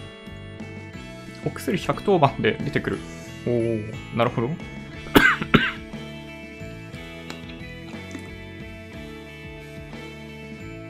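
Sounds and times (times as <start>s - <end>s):
speech: 1.4s - 5.2s
person coughing: 5.1s - 5.8s
throat clearing: 5.1s - 5.8s.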